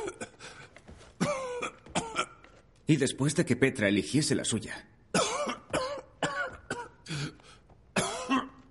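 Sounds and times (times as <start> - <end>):
person coughing in harsh bursts: 1.2 - 2.4, 5.1 - 8.6
speech: 2.9 - 5.0.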